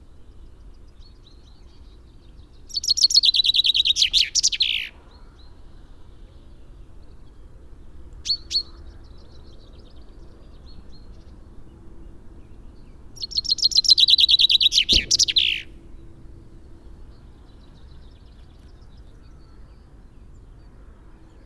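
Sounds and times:
Common chaffinch Fringilla coelebs singing a fast run of chips ending in a flourish: 0.6 - 5.0, 8.2 - 11.3, 12.9 - 16.1
Common chaffinch sharp call notes: 13.2 - 15.7.

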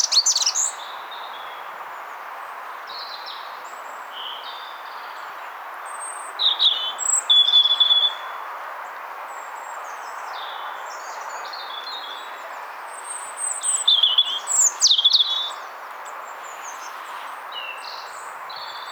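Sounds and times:
European robin singing, Erithacus rubecula: 0.0 - 1.6, 6.0 - 8.3, 9.8 - 18.9.

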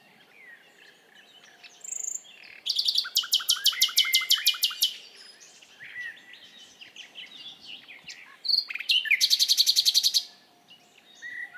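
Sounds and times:
common nightingale Luscinia megarhynchos singing: 0.0 - 11.5.

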